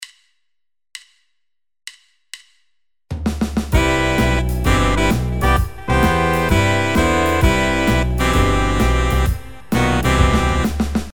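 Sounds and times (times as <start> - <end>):
jazz horn section: 3.7 - 11.1.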